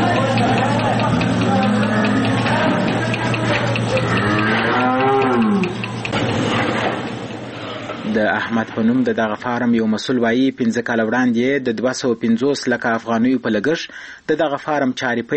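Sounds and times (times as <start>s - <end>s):
steady loud humming: 0.0s - 9.0s
cows mooing on a dairy farm in Kandahar's Dand district: 0.7s - 6.0s
speech: 8.4s - 15.3s.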